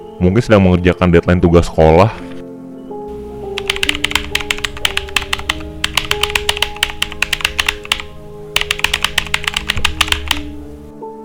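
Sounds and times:
speech: 0:00.2 - 0:02.3
rapid typing on a computer keyboard in a computer room: 0:03.5 - 0:10.6.

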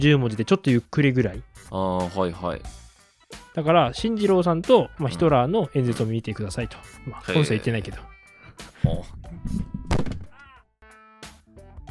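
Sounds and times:
speech: 0:00.0 - 0:02.8, 0:03.6 - 0:09.8
microphone tumbling and hitting a surface: 0:08.8 - 0:10.4.

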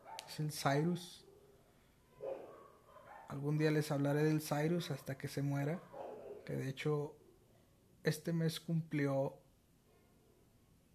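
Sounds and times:
14-year-old dog barking: 0:00.0 - 0:00.4, 0:02.2 - 0:03.4, 0:05.8 - 0:06.5
faint hum: 0:00.0 - 0:10.9
speech: 0:00.4 - 0:01.2, 0:03.3 - 0:07.2, 0:08.0 - 0:09.4.

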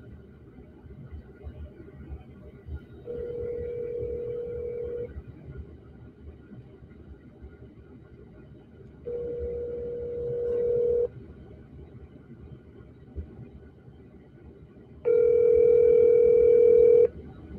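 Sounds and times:
low rumble: 0:00.0 - 0:17.5
ringback tones of an outgoing call to a cell phone: 0:03.1 - 0:05.1, 0:09.1 - 0:11.1, 0:15.1 - 0:17.1.

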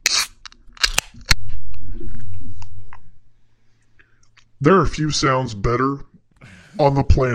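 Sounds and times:
can of beer being cracked open: 0:00.0 - 0:01.4
speech: 0:04.6 - 0:07.3.

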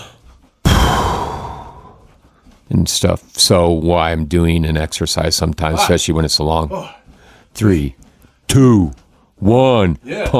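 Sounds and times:
deep breath as a lung-strengthening exercise: 0:00.0 - 0:02.1
speech: 0:02.7 - 0:07.0, 0:07.6 - 0:10.3.

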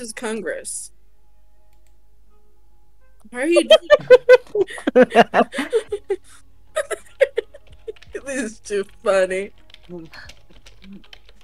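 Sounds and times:
speech: 0:00.0 - 0:01.0, 0:03.3 - 0:07.0, 0:08.2 - 0:11.1
laughter: 0:03.6 - 0:08.2
typing on a computer keyboard: 0:07.0 - 0:11.4.

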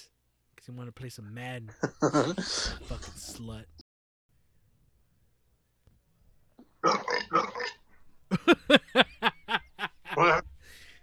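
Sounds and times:
speech: 0:00.7 - 0:03.8
raspy burps: 0:01.7 - 0:02.8, 0:06.7 - 0:07.9
person laughing in short rhythmic bursts: 0:01.8 - 0:03.4, 0:08.3 - 0:10.8.

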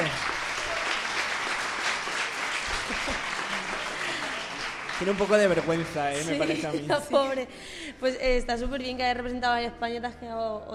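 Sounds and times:
crowd applauding: 0:00.0 - 0:06.8
laughter: 0:02.4 - 0:07.6
speech: 0:05.0 - 0:10.7.

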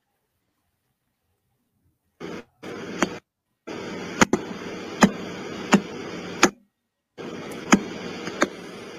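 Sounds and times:
static hiss of pulsar B0329+54 radio signal rendered as sound: 0:02.2 - 0:06.6, 0:07.2 - 0:08.9
sharp clicks of pulsar B0329+54 radio signal rendered as sound: 0:04.1 - 0:06.6, 0:07.2 - 0:08.6.

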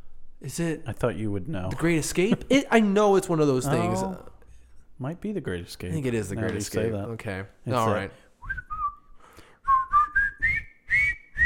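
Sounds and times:
speech: 0:00.4 - 0:04.3, 0:05.0 - 0:08.6
several people whistling a tune together: 0:08.4 - 0:11.4.

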